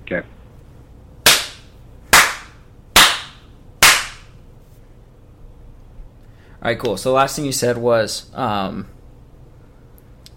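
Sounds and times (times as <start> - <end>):
speech: 0.1 - 0.4, 6.6 - 9.0
hand claps: 1.3 - 4.3.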